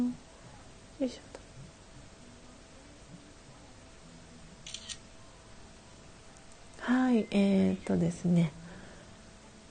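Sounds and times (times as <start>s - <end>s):
speech: 1.0s - 1.4s, 7.2s - 8.6s
camera shutter click as a photo is taken: 4.6s - 5.0s.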